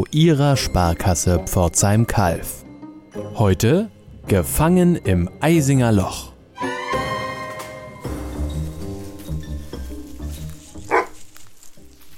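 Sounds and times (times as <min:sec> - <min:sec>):
speech: 0:00.0 - 0:06.3
steady tonal music: 0:00.0 - 0:12.1
dog barking and yelping: 0:10.9 - 0:11.2.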